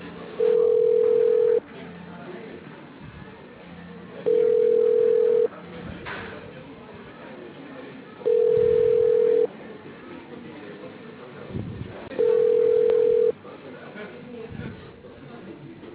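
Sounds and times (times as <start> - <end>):
ringback tone of an unanswered telephone call: 0.4 - 1.6, 4.2 - 5.5, 8.2 - 9.5, 12.2 - 13.3.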